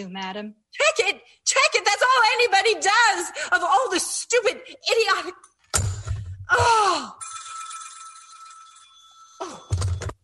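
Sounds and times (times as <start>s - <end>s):
speech: 0.0s - 5.5s, 6.5s - 7.3s, 9.4s - 9.7s
bright metallic telephone bell ringing: 7.2s - 10.1s.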